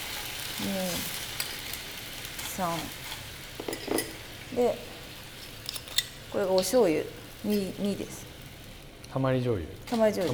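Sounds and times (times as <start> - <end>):
chicken sizzling in a frying pan over low heat for teriyaki: 0.0 - 10.3
speech: 0.6 - 1.2, 2.6 - 3.0, 4.5 - 4.9, 6.3 - 8.3, 9.2 - 10.3
utensil clinks and scrapes: 3.6 - 4.2, 5.4 - 6.8.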